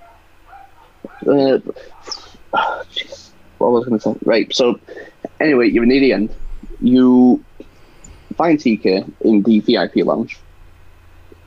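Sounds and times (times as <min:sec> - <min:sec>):
dog barking: 0:00.0 - 0:02.2
speech: 0:01.2 - 0:02.6, 0:03.6 - 0:07.5, 0:08.4 - 0:10.4.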